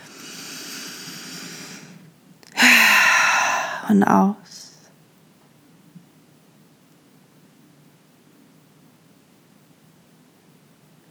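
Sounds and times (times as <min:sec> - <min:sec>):
deep breathing during a guided meditation: 0:00.0 - 0:02.0, 0:02.6 - 0:03.9
speech: 0:03.9 - 0:04.5.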